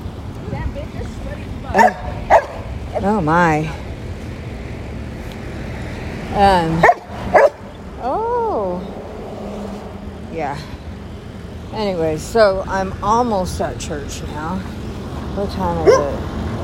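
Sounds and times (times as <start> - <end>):
steady outdoor noise: 0.0 - 16.6
speech: 1.7 - 2.0, 3.0 - 3.8, 6.4 - 7.0, 11.8 - 14.8, 15.4 - 16.3
dogs barking excitedly in short sharp bursts: 1.7 - 3.2, 6.8 - 7.7, 15.8 - 16.2.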